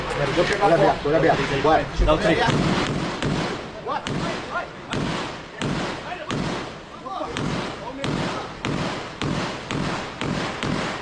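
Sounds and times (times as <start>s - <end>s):
speech: 0.2s - 3.0s
intense gunfire barrage: 2.3s - 11.0s.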